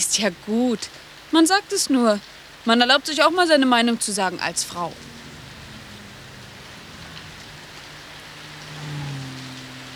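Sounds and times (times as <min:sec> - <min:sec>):
speech: 0:00.0 - 0:05.1
soft steady rain falling: 0:00.0 - 0:09.9
low hum: 0:04.3 - 0:09.9.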